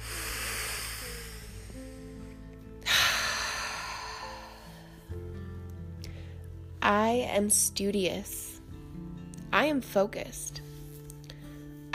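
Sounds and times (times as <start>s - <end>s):
deep breath in: 0.0s - 5.1s
quiet sustained music tones: 0.0s - 11.9s
speech: 6.9s - 8.4s, 9.5s - 10.7s.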